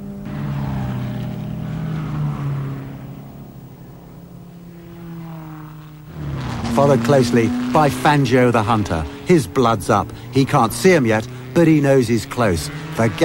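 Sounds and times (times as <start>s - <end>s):
Lancia Ferrari racing cars driving round the Carousel on the Nordschleife circuit: 0.0s - 13.2s
speech: 6.8s - 13.2s.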